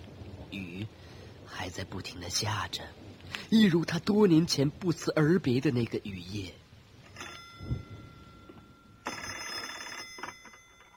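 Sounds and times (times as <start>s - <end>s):
faint hiss: 0.0s - 10.9s
speech: 0.5s - 6.6s
old-style telephone bell ringing with a metallic trill: 7.1s - 10.9s.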